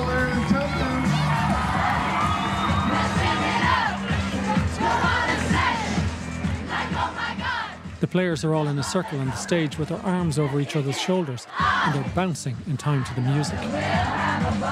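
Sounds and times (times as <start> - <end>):
shouts and whoops from the crowd: 0.0 - 4.0
large crowd in a hall cheering as a camogie team enters: 0.0 - 14.6
speech: 8.1 - 14.6.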